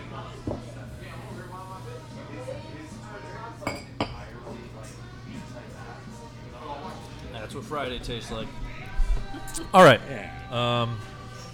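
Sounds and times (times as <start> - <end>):
murmuring chatter: 0.0 - 11.5
glasses clinking in a toast: 3.6 - 4.2
speech: 7.7 - 8.6, 9.5 - 11.1.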